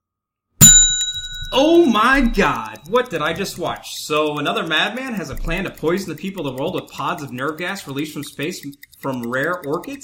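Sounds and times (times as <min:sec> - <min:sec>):
single bright bell ding signalling timer start: 0:00.6 - 0:02.5
speech: 0:01.5 - 0:10.0.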